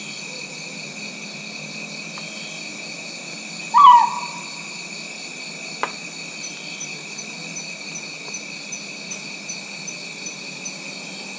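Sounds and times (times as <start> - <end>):
steady high insect drone: 0.0 - 11.3
Rinjani scops owl Otus jolandae hooting: 3.6 - 4.8.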